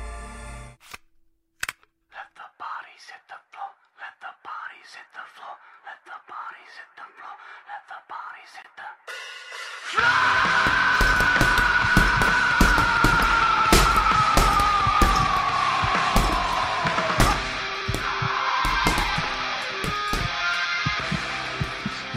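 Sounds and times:
loud hard music: 0:09.2 - 0:22.1
punches hitting a punching ball backstage in a community hall: 0:10.5 - 0:21.9.

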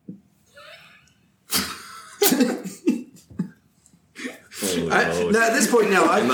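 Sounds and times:
harsh coughs: 0:01.5 - 0:02.8
speech: 0:02.4 - 0:02.8, 0:05.0 - 0:06.3
laughter: 0:04.2 - 0:06.3.

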